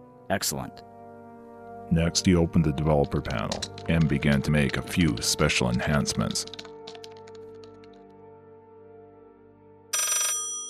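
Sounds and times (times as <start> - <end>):
speech: 0.3 - 0.9, 1.9 - 6.6
old mechanical telephone bell ringing: 9.9 - 10.6.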